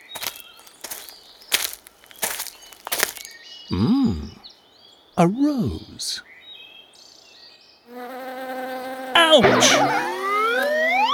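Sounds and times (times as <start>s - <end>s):
speech: 3.7s - 4.4s, 5.2s - 6.3s, 9.2s - 10.0s
bee buzzing loudly: 7.9s - 11.1s
thin high whistling tones: 9.4s - 11.1s.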